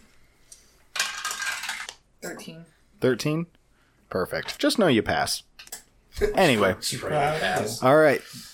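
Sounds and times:
dice rolling on a hard tabletop for a stealth check in a game: 0:01.0 - 0:02.0
speech: 0:02.3 - 0:05.5, 0:06.2 - 0:08.5.

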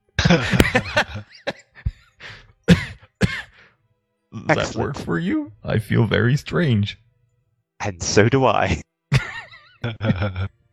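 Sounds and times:
laughter: 0:00.2 - 0:02.0, 0:09.1 - 0:10.6
speech: 0:00.3 - 0:01.6, 0:04.5 - 0:07.0, 0:07.8 - 0:08.9, 0:09.8 - 0:10.6
person coughing: 0:02.7 - 0:03.5.

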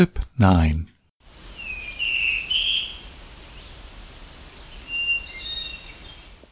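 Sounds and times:
speech: 0:00.0 - 0:00.9
faint hiss: 0:00.0 - 0:06.4
black-throated blue warbler singing: 0:01.5 - 0:03.9, 0:04.6 - 0:06.3.

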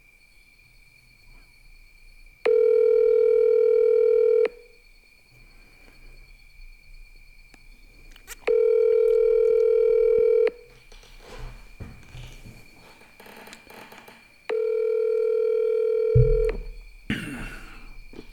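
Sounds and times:
phone call ringing tone heard through the handset: 0:02.5 - 0:04.7, 0:08.4 - 0:10.7, 0:14.5 - 0:16.8.

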